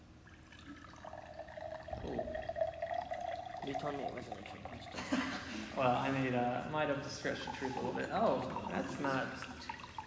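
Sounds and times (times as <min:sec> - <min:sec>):
liquid poured into a glass: 0:00.2 - 0:05.1, 0:07.1 - 0:10.0
speech: 0:03.6 - 0:09.7.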